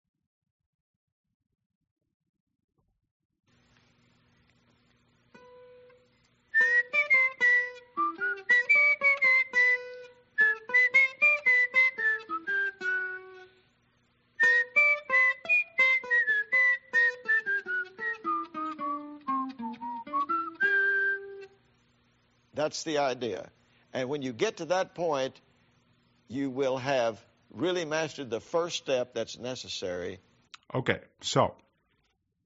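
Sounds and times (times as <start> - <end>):
person whistling a lively melody: 6.5 - 13.6, 14.4 - 21.6
speech: 22.6 - 25.4, 26.3 - 31.6.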